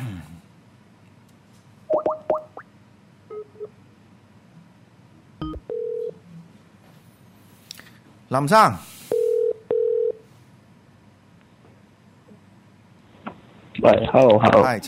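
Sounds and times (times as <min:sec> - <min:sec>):
soft phone tones: 0:05.4 - 0:06.2, 0:09.1 - 0:10.2
speech: 0:08.3 - 0:08.9, 0:13.8 - 0:14.8.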